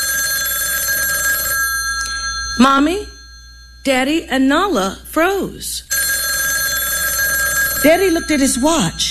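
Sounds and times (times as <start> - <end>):
telephone bell ringing at a family dining room table: 0.0 - 4.0, 5.9 - 9.1
speech: 2.6 - 3.1, 3.8 - 5.9, 7.8 - 9.1.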